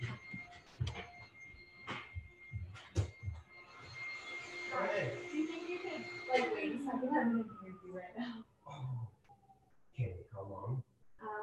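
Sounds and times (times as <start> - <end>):
vacuum cleaner running in another room: 2.1 - 7.9
speech: 4.7 - 9.0, 10.0 - 10.8.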